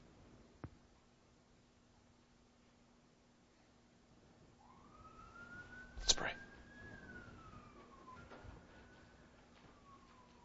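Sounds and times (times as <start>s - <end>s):
steady low rumble of traffic: 0.0s - 10.4s
emergency vehicle siren wailing while passing: 4.6s - 10.4s.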